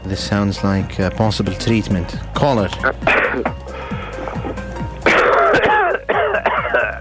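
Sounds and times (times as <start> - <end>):
speech: 0.1 - 3.5
throat clearing from an itchy throat: 3.0 - 3.5, 5.0 - 6.9.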